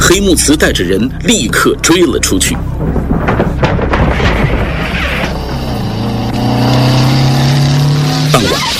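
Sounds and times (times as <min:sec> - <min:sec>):
speech: 0:00.1 - 0:03.9, 0:08.4 - 0:08.7
motorcycle engine roaring as it is ridden up to a brick kiln: 0:02.8 - 0:08.7.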